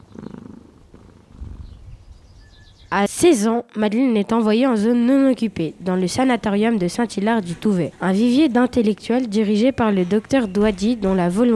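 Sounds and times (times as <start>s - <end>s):
cat purring: 0.0s - 2.3s
speech: 2.9s - 11.5s.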